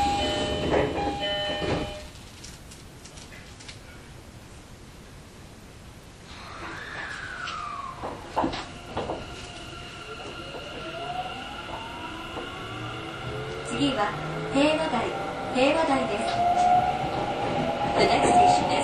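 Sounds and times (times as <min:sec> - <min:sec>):
train doors closing: 0:00.0 - 0:02.3, 0:06.2 - 0:18.8.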